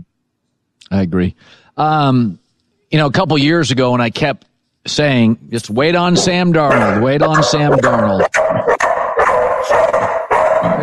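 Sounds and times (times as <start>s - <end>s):
speech: 0.9s - 8.8s
dog barking at someone at the door: 6.1s - 10.8s.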